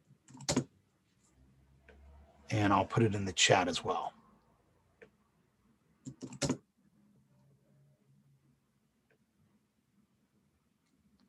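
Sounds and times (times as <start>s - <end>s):
typing on a computer keyboard: 0.3s - 0.7s, 6.0s - 6.6s
speech: 2.5s - 4.2s.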